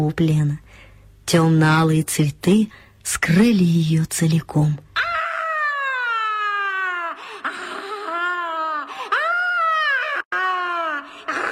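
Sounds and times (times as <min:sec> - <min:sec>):
speech: 0:00.0 - 0:05.1
woman screaming frantically: 0:05.0 - 0:11.5.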